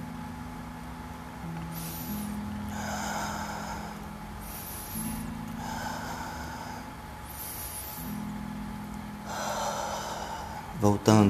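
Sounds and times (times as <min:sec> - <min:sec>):
soft sustained low musical drone: 0:00.0 - 0:11.2
slow deep breaths: 0:01.7 - 0:08.3, 0:09.2 - 0:10.8
speech: 0:10.8 - 0:11.2.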